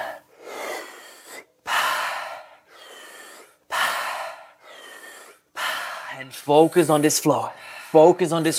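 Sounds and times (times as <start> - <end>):
deep breathing in and out through mouth: 0.0 - 6.2
speech: 6.2 - 8.5.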